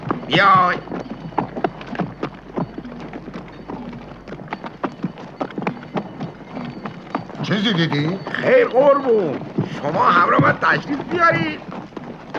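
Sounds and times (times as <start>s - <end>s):
horse hooves on rocky, stony ground: 0.0s - 12.3s
speech: 0.3s - 1.0s, 7.5s - 11.7s.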